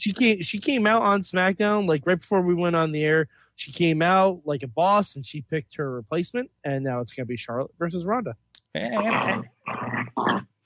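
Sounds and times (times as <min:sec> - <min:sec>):
speech: 0:00.0 - 0:10.5
dog growling: 0:08.8 - 0:10.5.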